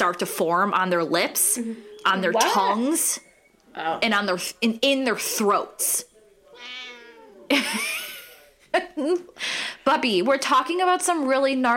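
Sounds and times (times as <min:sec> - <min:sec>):
speech: 0:00.0 - 0:06.8, 0:07.5 - 0:08.1, 0:08.7 - 0:11.7
cat meowing and yowling: 0:06.6 - 0:07.4
laughter: 0:07.5 - 0:09.2.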